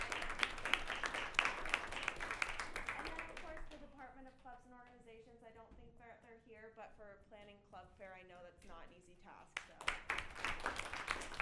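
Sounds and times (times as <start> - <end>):
audience applauding at a welcome-week gathering: 0.0 - 3.6, 9.8 - 11.4.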